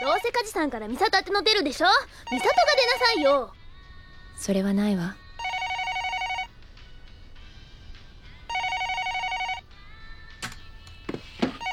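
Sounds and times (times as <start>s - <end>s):
speech: 0.1s - 3.6s, 4.4s - 5.2s
telephone ringing in bright buzzing bursts: 2.3s - 3.5s, 5.4s - 6.5s, 8.5s - 9.7s, 11.4s - 11.7s.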